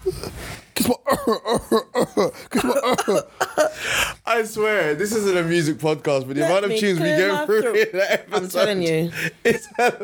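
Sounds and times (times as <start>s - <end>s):
speech: 0.8s - 3.2s, 4.5s - 10.0s
person mimicking coughing with throaty bursts: 0.8s - 3.8s.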